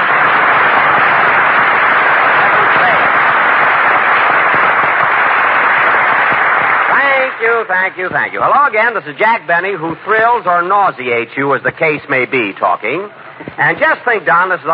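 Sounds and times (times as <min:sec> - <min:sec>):
large studio audience applauding: 0:00.0 - 0:08.9
speech: 0:07.5 - 0:14.7.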